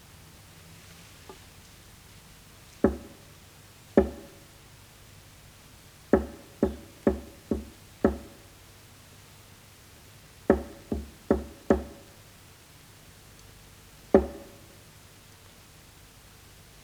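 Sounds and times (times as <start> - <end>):
knocking signals tapped on a prison cell wall: 2.8 - 3.3, 4.0 - 4.5, 6.2 - 8.5, 10.5 - 12.1, 14.2 - 14.7.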